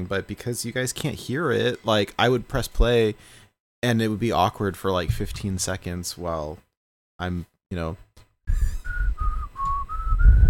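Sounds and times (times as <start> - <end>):
speech: 0.0 - 8.6
person whistling a short wavering tune: 8.5 - 10.4.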